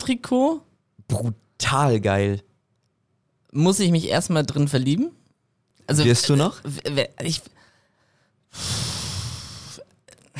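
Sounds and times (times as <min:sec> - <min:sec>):
speech: 0:00.0 - 0:02.5, 0:03.5 - 0:05.2, 0:05.9 - 0:07.6, 0:08.5 - 0:08.8
person giving a heavy snorting exhale: 0:08.6 - 0:10.3.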